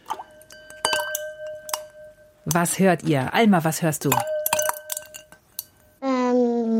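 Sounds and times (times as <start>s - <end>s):
ice cubes clinking against a glass: 0.1s - 2.1s, 4.0s - 5.7s
speech: 2.5s - 4.4s
child speaking: 6.0s - 6.7s.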